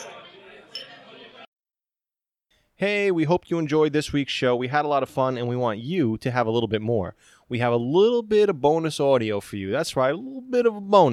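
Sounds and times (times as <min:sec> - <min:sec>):
glasses clinking in a toast: 0:00.7 - 0:01.0
speech: 0:02.8 - 0:11.1.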